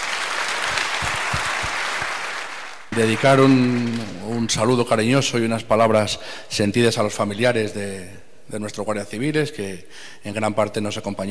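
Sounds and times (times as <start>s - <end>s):
audience applause at a ceremony honouring the Guardia Civil in Guijuelo: 0.0s - 4.5s
speech: 3.0s - 11.2s.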